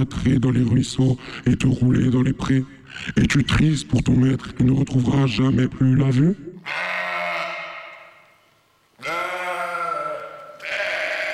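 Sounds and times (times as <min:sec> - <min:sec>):
speech: 0:00.0 - 0:06.8
ram bleating: 0:06.6 - 0:08.3, 0:09.0 - 0:11.3.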